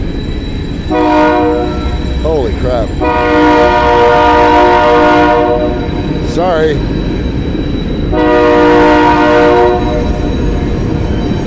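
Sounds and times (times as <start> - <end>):
train rumbling across a steel bridge: 0.0 - 11.4
metallic horn-like tones from train on steel bridge: 0.9 - 6.0, 8.1 - 10.4
speech: 6.4 - 7.0.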